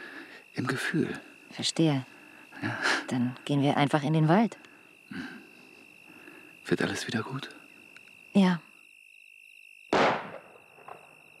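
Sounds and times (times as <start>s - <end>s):
speech: 0.6s - 5.3s, 6.7s - 7.6s, 8.4s - 8.7s
gunshot: 9.9s - 11.1s.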